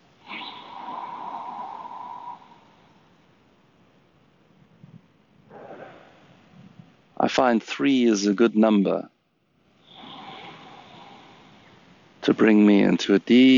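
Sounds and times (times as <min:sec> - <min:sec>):
deep diaphragm breathing during a relaxation exercise: 0:00.2 - 0:03.4, 0:05.4 - 0:07.2, 0:09.7 - 0:12.3
speech: 0:07.3 - 0:09.1, 0:12.2 - 0:13.5.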